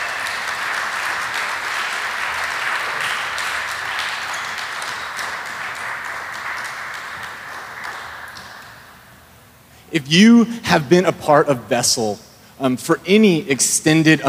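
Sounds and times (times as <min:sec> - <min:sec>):
sizable crowd applauding for graduating seniors: 0:00.0 - 0:09.1
speech: 0:09.9 - 0:14.2.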